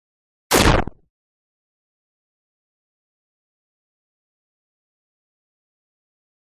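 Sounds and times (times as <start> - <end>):
static rip: 0.5 - 1.0.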